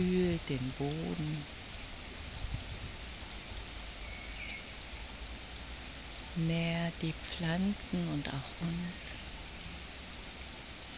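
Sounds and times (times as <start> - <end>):
speech: 0.0 - 1.6, 6.4 - 9.3
steady rain: 0.0 - 10.9.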